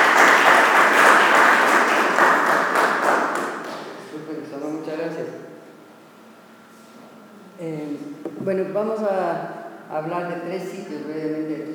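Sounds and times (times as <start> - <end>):
lecture audience applause welcoming an archaeologist: 0.0 - 4.0
speech: 8.5 - 11.7.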